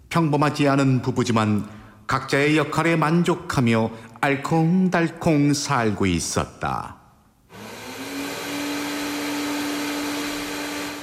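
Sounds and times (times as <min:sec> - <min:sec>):
speech: 0:00.1 - 0:07.0
vacuum cleaner running: 0:07.5 - 0:11.0.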